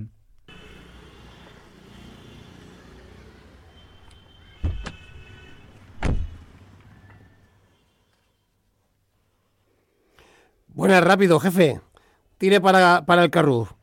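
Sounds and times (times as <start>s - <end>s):
taxi door thumping shut: 4.6s - 5.1s, 6.0s - 6.4s
speech: 10.9s - 13.8s.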